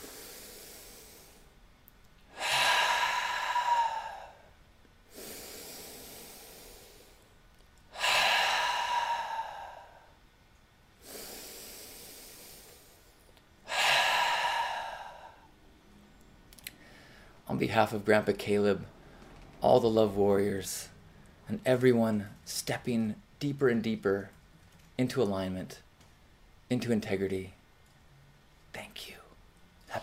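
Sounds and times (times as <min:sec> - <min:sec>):
deep breaths in through the nose and out through the mouth: 0:00.0 - 0:01.6, 0:02.3 - 0:10.3, 0:11.0 - 0:15.8, 0:16.7 - 0:17.4
speech: 0:17.6 - 0:19.0, 0:19.6 - 0:20.9, 0:21.5 - 0:24.4, 0:25.0 - 0:25.9, 0:26.7 - 0:27.6.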